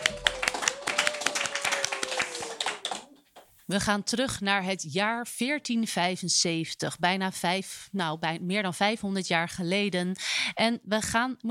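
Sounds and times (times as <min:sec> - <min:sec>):
small group applauding actors: 0:00.0 - 0:03.5
speech: 0:03.7 - 0:11.5.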